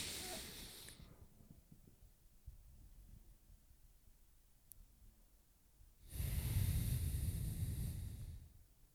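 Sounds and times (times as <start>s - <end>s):
deep slow belly breathing in and out: 0.0s - 1.2s, 6.0s - 8.6s.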